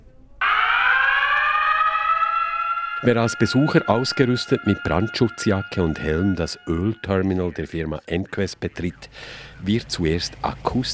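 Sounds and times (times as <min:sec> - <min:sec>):
oil terminal general alarm siren wailing: 0:00.4 - 0:08.1
speech: 0:03.0 - 0:10.9.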